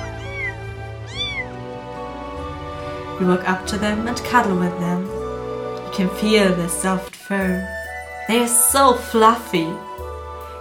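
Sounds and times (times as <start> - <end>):
kittens meowing in a basket on a sofa: 0.0 - 1.6
speech: 3.2 - 5.2, 5.9 - 9.9.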